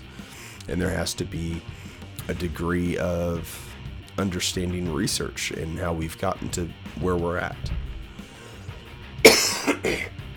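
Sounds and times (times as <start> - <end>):
speech: 0.7 - 7.8
harsh coughing: 9.2 - 10.2.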